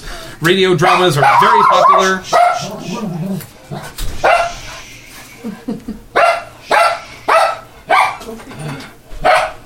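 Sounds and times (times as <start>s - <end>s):
speech: 0.4s - 4.4s
dog barking: 0.8s - 3.0s, 4.2s - 4.7s, 6.2s - 8.3s, 9.2s - 9.6s
laughter: 5.1s - 6.1s.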